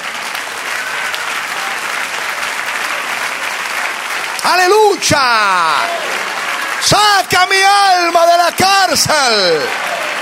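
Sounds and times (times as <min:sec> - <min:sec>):
audience clapping: 0:00.0 - 0:10.1
speech: 0:04.4 - 0:06.1, 0:06.8 - 0:09.9.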